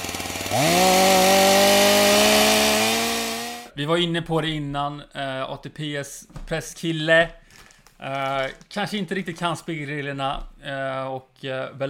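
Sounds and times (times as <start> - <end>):
chainsaw sputtering at idle and revving: 0.0 - 3.7
speech: 0.5 - 1.2, 3.8 - 7.4, 8.0 - 11.8.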